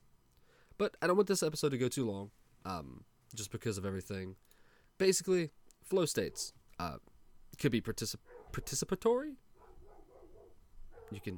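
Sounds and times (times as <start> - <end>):
speech: 0.8 - 9.4, 11.1 - 11.3
dog barking: 8.3 - 8.7, 9.6 - 11.3.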